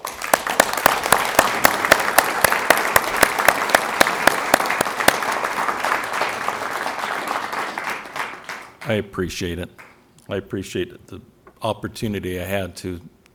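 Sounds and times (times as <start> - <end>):
audience applause: 0.0 - 9.0
speech: 8.9 - 13.2.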